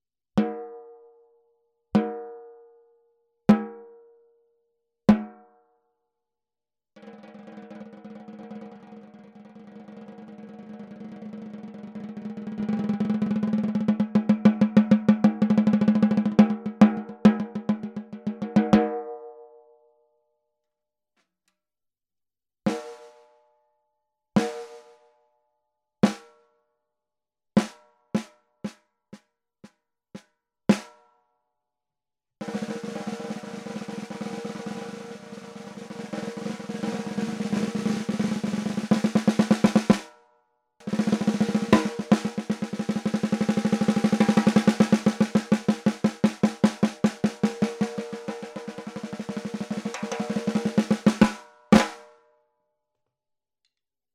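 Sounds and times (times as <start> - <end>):
Ludwig LM400 14x5 snare drum: 12.0 - 19.0, 22.7 - 23.3, 24.4 - 25.0, 26.0 - 26.3, 27.6 - 29.3, 30.2 - 31.0, 32.4 - 40.1, 40.8 - 52.1.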